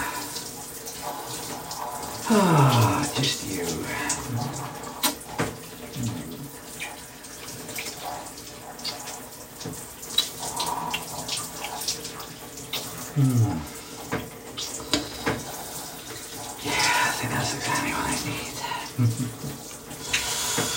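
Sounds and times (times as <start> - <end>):
shower water cascading down a person: 0.0 - 20.7
person murmuring: 2.2 - 4.8, 6.0 - 6.5, 13.1 - 13.7, 16.6 - 19.5
speech: 2.3 - 4.8.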